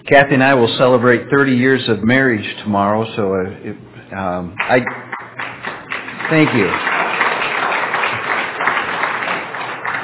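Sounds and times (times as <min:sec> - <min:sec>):
speech: 0:00.1 - 0:05.1, 0:06.3 - 0:07.0
audience applause: 0:04.6 - 0:10.0.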